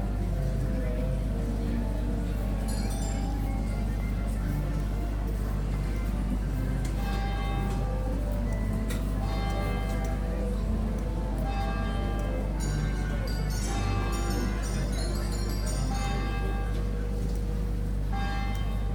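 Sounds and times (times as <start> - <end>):
dense crowd noise at a market and funfair in Chesterfield UK: 0.0 - 18.9
faint voices: 0.0 - 18.9
jangly funfair ride music: 1.2 - 18.8
bright ringing bell-like tones at a funfair: 11.5 - 16.8.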